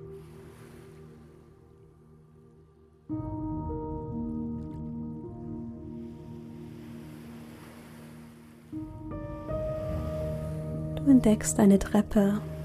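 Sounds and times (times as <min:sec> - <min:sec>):
ocean waves breaking on shore: 0:00.0 - 0:02.8, 0:05.8 - 0:12.6
sustained calm synth pad with shifting chords: 0:00.0 - 0:12.6
speech: 0:11.1 - 0:12.5.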